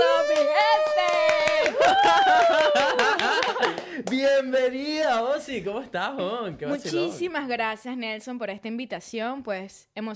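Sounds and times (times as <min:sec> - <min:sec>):
person calling out in a long drawn-out cheer: 0:00.0 - 0:04.5
steady hand clapping: 0:00.0 - 0:05.3
laughter: 0:01.6 - 0:04.1
speech: 0:04.0 - 0:10.1.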